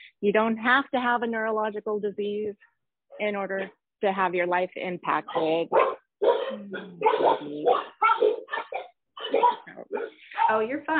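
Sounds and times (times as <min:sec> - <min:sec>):
speech: 0:00.2 - 0:08.3, 0:10.5 - 0:10.9
dogs barking and yelping: 0:05.2 - 0:10.7.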